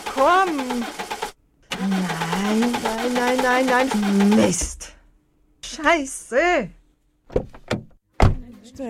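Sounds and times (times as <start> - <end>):
car engine cranking and failing to start: 0.0 - 4.7
speech: 0.2 - 1.1, 1.8 - 5.0, 5.8 - 7.5.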